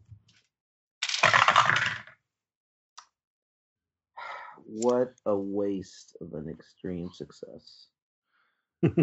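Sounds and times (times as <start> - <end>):
dice rolling on a hard tabletop: 1.0 - 2.2
speech: 4.7 - 7.9, 8.8 - 9.0.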